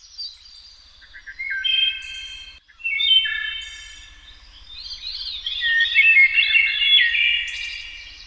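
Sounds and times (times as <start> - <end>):
flock of birds singing and chirping at summer midday: 0.0 - 8.2.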